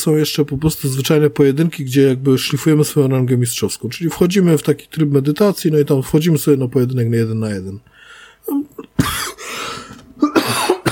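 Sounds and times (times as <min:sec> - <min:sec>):
speech: 0:00.0 - 0:10.6
harsh breathy coughing with a long hacking fit: 0:08.5 - 0:10.8.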